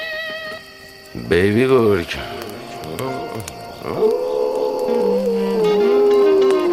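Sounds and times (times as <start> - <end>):
speech: 1.3 - 2.3, 3.0 - 4.3
young wolf howling: 3.7 - 6.7
rough yippy sounds: 3.8 - 6.7.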